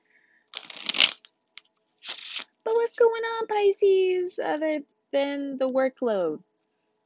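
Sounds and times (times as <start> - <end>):
Mucha tarot deck riffling while being shuffled: 0.6 - 2.5
speech: 2.9 - 6.5.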